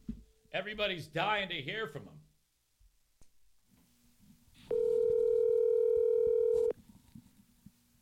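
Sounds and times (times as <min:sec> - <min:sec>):
faint noise: 0:00.0 - 0:08.0
speech: 0:00.5 - 0:02.2
telephone dial tone as a call is placed: 0:04.7 - 0:06.8.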